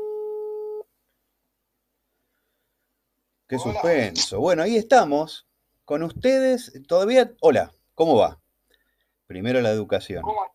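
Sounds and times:
steady electronic telephone tone while placing a call: 0.0 - 0.8
speech: 3.5 - 8.4, 9.3 - 10.5.

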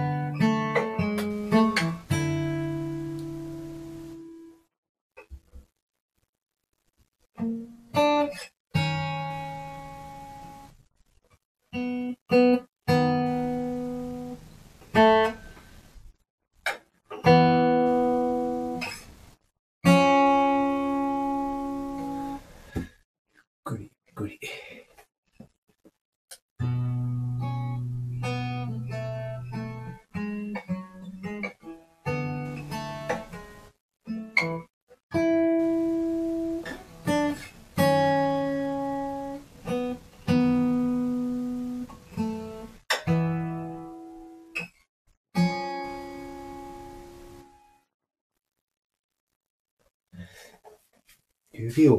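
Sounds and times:
Gibson J-45 acoustic guitar played fingerstyle: 0.0 - 4.6, 7.4 - 10.8, 11.7 - 15.8, 16.6 - 19.2, 19.8 - 23.0, 26.6 - 44.8, 45.4 - 47.8
speech: 51.7 - 51.9.

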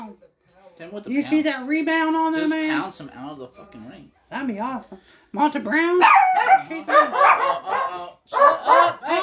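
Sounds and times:
speech: 0.8 - 9.2
dog barking loudly: 6.0 - 9.2.

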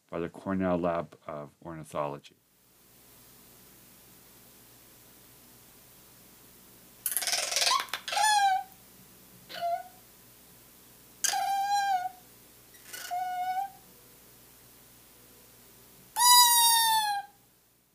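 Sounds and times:
speech: 0.1 - 2.4
eastern screech owl chuckle rattle: 7.0 - 8.7, 11.2 - 12.2, 12.8 - 13.7
eastern screech owl screech call: 7.1 - 8.7, 9.5 - 10.0, 11.2 - 12.2, 12.8 - 13.8, 16.2 - 17.4.

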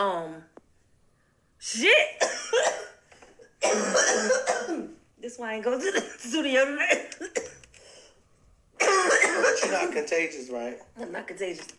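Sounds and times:
speech: 1.6 - 2.9, 3.6 - 7.6, 8.8 - 11.7
person coughing harshly: 2.2 - 3.0, 3.6 - 5.0, 6.9 - 7.6, 8.8 - 10.0
faint breath: 7.7 - 8.3.

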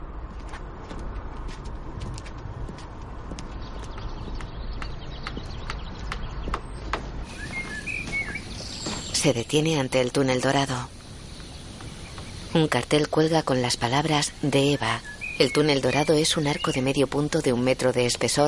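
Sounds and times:
constant low noise: 0.0 - 18.4
footsteps of a man walking along a deserted street: 0.1 - 9.3
faint bird chirps: 3.5 - 17.1
speech: 9.2 - 11.0, 12.5 - 18.4.

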